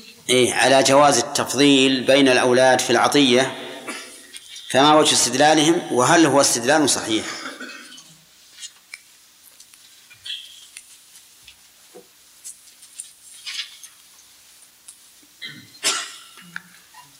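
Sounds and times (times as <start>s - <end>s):
speech: 0.3s - 3.6s, 4.7s - 7.4s
faint scattered clicks and rustling: 8.0s - 15.4s
sneeze during a religious lesson: 15.4s - 16.6s.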